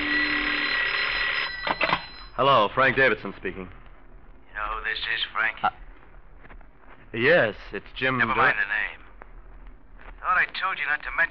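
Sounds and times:
telephone ringing loudly: 0:00.0 - 0:02.6
speech: 0:02.4 - 0:03.8, 0:04.8 - 0:05.8, 0:07.1 - 0:09.0, 0:10.3 - 0:11.3.

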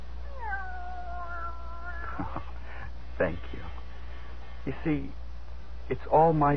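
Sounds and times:
steady low hum: 0:00.0 - 0:06.5
cat meowing long and drawn-out: 0:00.2 - 0:02.3
speech: 0:03.2 - 0:03.8, 0:04.6 - 0:05.2, 0:05.9 - 0:06.5.

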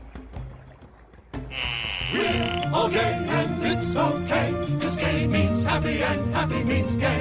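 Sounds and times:
water sloshing and splashing: 0:00.0 - 0:03.0
boat engine rumble: 0:00.0 - 0:04.2
speech: 0:01.5 - 0:07.1.

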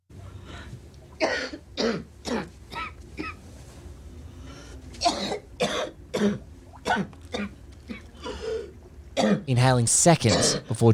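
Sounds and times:
faint low hum: 0:00.1 - 0:10.9
speech: 0:01.2 - 0:02.5, 0:09.5 - 0:10.9
woman giving harsh spluttering coughs while walking through her apartment: 0:01.2 - 0:03.4, 0:05.0 - 0:07.5, 0:10.3 - 0:10.6.

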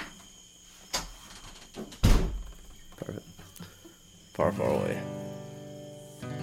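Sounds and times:
heavy door thudding shut: 0:01.7 - 0:02.9
speech: 0:04.5 - 0:05.2.

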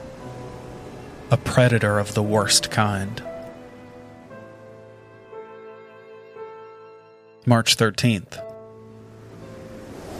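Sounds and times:
sea waves roaring outside a lighthouse: 0:00.0 - 0:04.6, 0:09.0 - 0:10.1
speech: 0:01.3 - 0:03.3, 0:07.4 - 0:08.5.

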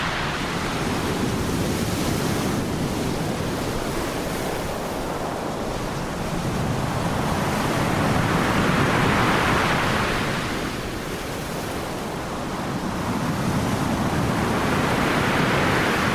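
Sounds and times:
stormy waves crashing on a pebble beach: 0:00.0 - 0:16.1.

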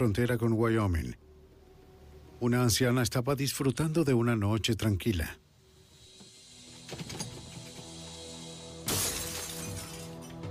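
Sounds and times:
speech: 0:00.0 - 0:01.3, 0:02.4 - 0:05.4
low steady droning background: 0:00.0 - 0:09.0
door of a house forced open by an intruder with a splintering crash: 0:08.8 - 0:10.3
shattering debris: 0:08.8 - 0:10.4.

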